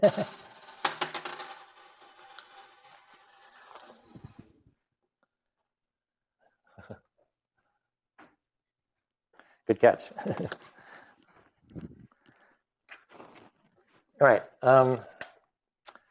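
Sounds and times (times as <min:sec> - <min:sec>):
speech: 0:00.0 - 0:00.4, 0:09.7 - 0:10.8, 0:14.2 - 0:15.2
handful of coins clattering onto a hard surface: 0:00.0 - 0:04.2.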